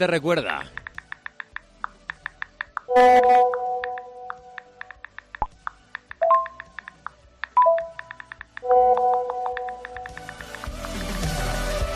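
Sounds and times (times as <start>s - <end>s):
speech: 0.0s - 0.8s, 3.0s - 3.6s
mobile phone keyboard tapping: 0.4s - 11.2s
short bright chat-message tones: 2.9s - 4.7s, 6.2s - 6.6s, 8.6s - 10.1s.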